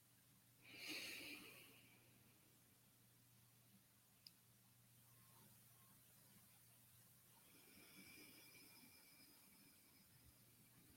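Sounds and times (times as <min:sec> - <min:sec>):
slow deep breathing: 0:00.6 - 0:02.3, 0:07.4 - 0:10.7.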